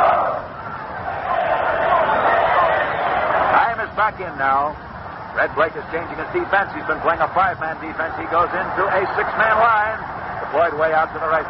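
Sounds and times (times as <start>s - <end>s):
large stadium crowd cheering at a football game: 0.0s - 4.0s, 7.9s - 11.4s
speech: 4.2s - 11.4s.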